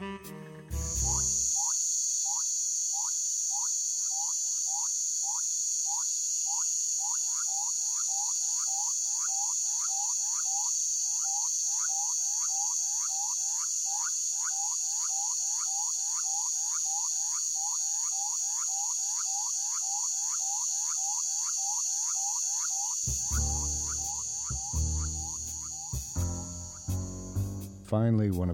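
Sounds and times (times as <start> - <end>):
high-pitched insect drone: 0.7 - 27.8
small frogs calling in southern Mexico: 0.9 - 27.7
speech: 27.9 - 28.5.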